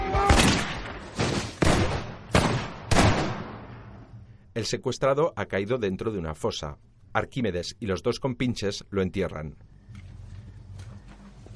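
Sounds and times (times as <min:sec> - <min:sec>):
gunshots in a field: 0:00.1 - 0:03.9
speech: 0:04.6 - 0:09.7.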